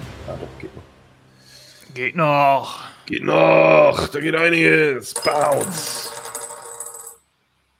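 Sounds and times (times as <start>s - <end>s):
speech: 0.3s - 1.0s, 1.9s - 6.2s
ten-sided die rolling and clattering on a hard tabletop: 5.1s - 7.2s.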